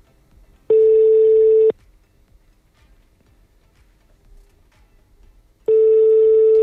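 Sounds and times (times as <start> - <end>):
steady one-second telephone tones from a failed call: 0.7 - 1.7, 5.7 - 6.6.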